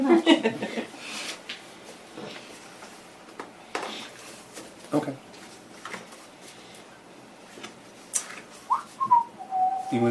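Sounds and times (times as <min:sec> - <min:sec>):
speech: 0:00.0 - 0:00.7
person whistling: 0:08.7 - 0:10.0.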